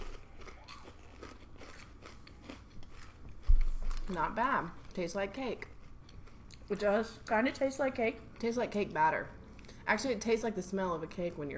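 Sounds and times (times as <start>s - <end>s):
crunching on puffy non-sticky lemon popcorn: 0.0s - 4.2s
speech: 4.1s - 5.7s, 6.7s - 11.5s.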